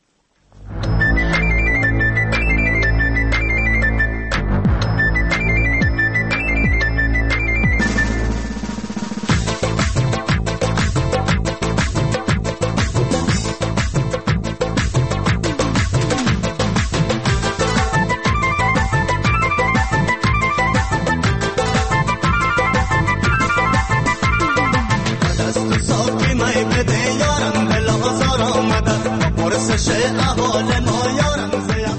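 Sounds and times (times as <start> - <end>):
song on the radio with driving rhythmic beat: 0.8 - 31.9
melodic singing voice: 23.5 - 31.9.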